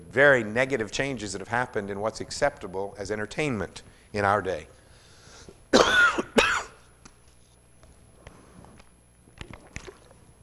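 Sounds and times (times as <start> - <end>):
speech: 0.1 - 4.8
person coughing harshly: 5.7 - 6.8.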